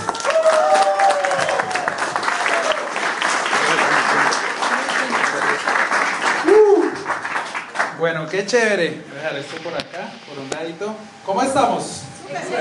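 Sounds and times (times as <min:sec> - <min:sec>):
cheers and whistles: 0:00.0 - 0:03.0, 0:06.4 - 0:07.1
audience applause from a room full of people: 0:00.0 - 0:08.2
speech: 0:08.2 - 0:12.5.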